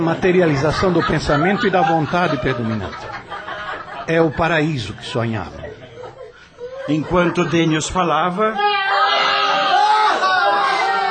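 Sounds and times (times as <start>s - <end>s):
speech: 0.0s - 3.2s, 4.1s - 5.6s, 6.9s - 8.8s
laughter: 0.0s - 8.1s
many people shouting and yelling: 8.6s - 11.0s.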